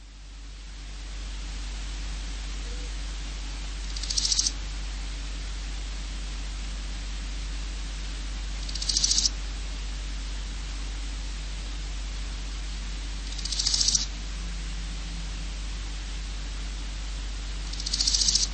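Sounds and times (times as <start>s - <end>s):
background hiss: 0.0s - 18.5s
large gold grasshopper stridulating: 3.8s - 4.7s, 8.2s - 9.5s, 11.5s - 18.5s.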